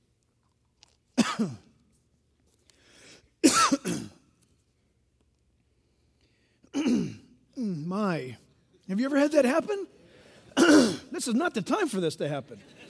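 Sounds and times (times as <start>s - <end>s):
person clearing throat from a tickle in the throat: 1.2s - 1.6s, 3.4s - 4.2s, 6.7s - 7.7s, 10.6s - 11.1s
person coughing from a tickle in the throat: 1.2s - 1.7s, 3.4s - 4.2s, 6.7s - 7.7s, 10.6s - 11.2s
speech: 1.4s - 1.6s, 7.9s - 10.0s, 10.6s - 12.8s.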